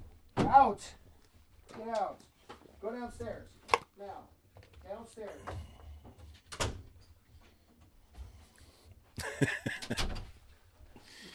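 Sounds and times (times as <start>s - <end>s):
speech: 0.5s - 1.0s, 1.7s - 6.2s, 9.2s - 10.2s
laughter: 9.2s - 10.1s
door being shut: 9.8s - 10.4s.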